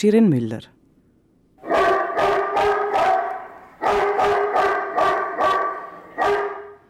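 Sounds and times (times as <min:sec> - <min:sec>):
speech: 0:00.0 - 0:00.8
smart guard-dog deterrent device playing dog barking: 0:01.6 - 0:06.8.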